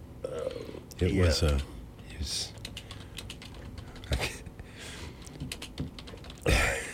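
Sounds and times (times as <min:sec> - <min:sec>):
typing on a computer keyboard: 0:01.4 - 0:01.7, 0:02.5 - 0:04.2, 0:05.2 - 0:06.5.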